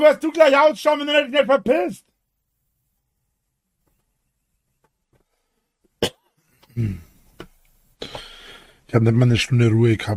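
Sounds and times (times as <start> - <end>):
speech: 0.0 - 2.1, 6.8 - 7.0, 8.9 - 10.1
person coughing: 6.0 - 7.1.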